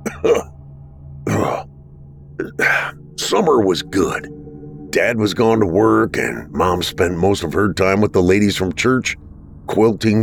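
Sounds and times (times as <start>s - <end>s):
man coughing: 0.0s - 0.6s, 1.3s - 1.7s, 2.4s - 3.0s
low hum: 0.0s - 10.2s
speech: 0.2s - 0.5s, 3.3s - 10.2s.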